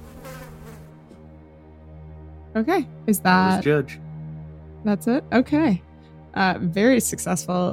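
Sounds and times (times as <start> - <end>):
bees buzzing while flying out: 0.0 - 1.1
speech: 2.6 - 4.0, 4.8 - 7.7.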